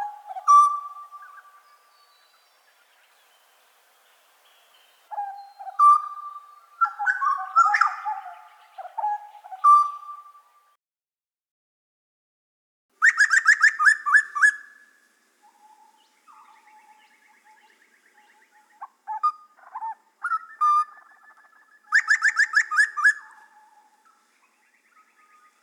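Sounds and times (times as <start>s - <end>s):
grey butcherbird song: 0.0s - 10.7s, 13.0s - 25.6s.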